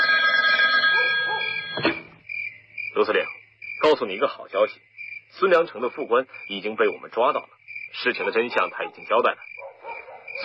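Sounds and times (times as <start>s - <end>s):
telephone ringing: 0.0s - 2.2s
speech: 3.0s - 9.5s.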